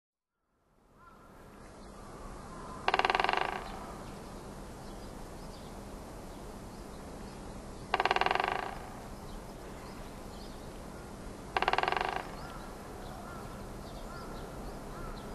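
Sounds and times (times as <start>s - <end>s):
background noise: 0.2s - 15.3s
great spotted woodpecker drumming in Sapporo: 2.8s - 4.0s, 7.8s - 9.2s, 11.5s - 13.4s.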